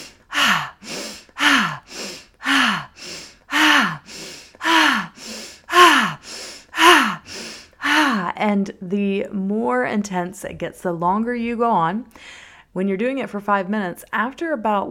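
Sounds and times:
rhythmic breathwork inhaling through the nose and exhaling: 0.0s - 8.4s
speech: 8.5s - 14.9s.

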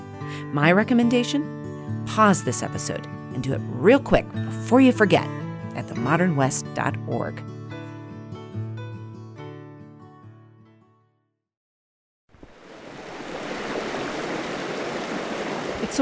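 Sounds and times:
music: 0.0s - 11.5s
speech: 0.5s - 7.6s
river water rushing: 12.4s - 16.0s.

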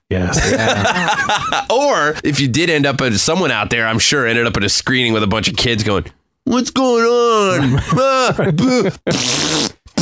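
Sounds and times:
speech: 0.1s - 10.0s
laughter: 0.3s - 2.2s, 7.4s - 9.2s
person making raspberry-style fart noises with the mouth: 9.1s - 10.0s.

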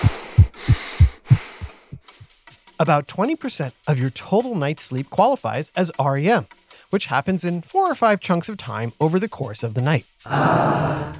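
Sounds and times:
steady regular heartbeat thumping in lub-dub pairs: 0.0s - 2.2s
speech: 2.8s - 11.1s.

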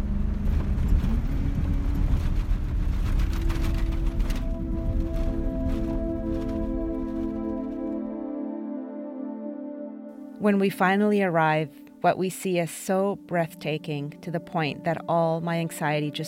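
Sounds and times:
4x4 truck engine roaring and revving driving over sand dunes: 0.0s - 8.0s
speech: 10.4s - 16.2s.

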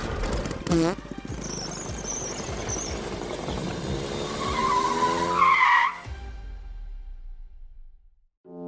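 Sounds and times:
bathtub car engine revving and rumbling: 0.0s - 5.4s
bathtub car tires squealing: 0.0s - 6.1s.

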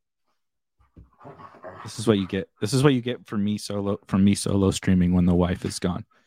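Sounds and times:
dog huffing and grunting: 0.9s - 2.4s
speech: 1.2s - 6.2s.

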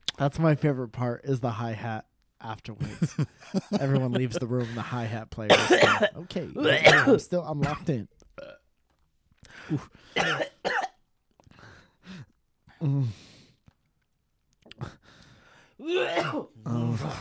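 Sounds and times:
speech: 0.2s - 8.5s, 9.5s - 10.8s, 12.8s - 13.3s, 14.8s - 15.0s, 15.8s - 17.2s
laughter: 2.8s - 5.0s
person in a heavy coughing fit: 5.5s - 7.9s, 10.2s - 11.0s, 15.8s - 17.2s
person groaning and gasping: 15.8s - 17.2s.

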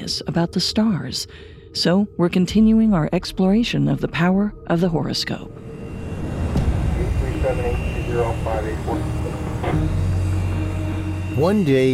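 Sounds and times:
speech: 0.0s - 5.6s, 11.4s - 11.9s
airplane engine idling on the tarmac: 5.6s - 11.9s.

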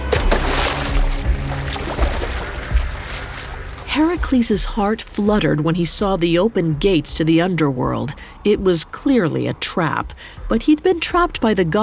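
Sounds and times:
heavy low thumps of someone diving into a river: 0.0s - 5.6s
river water sloshing and churning: 0.0s - 6.3s
speech: 4.0s - 11.8s.

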